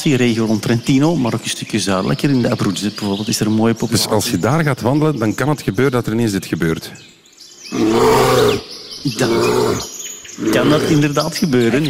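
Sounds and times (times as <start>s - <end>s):
faint bird chirps: 0.0s - 11.8s
speech: 0.0s - 11.8s
agitated bear growling threateningly: 7.7s - 11.2s.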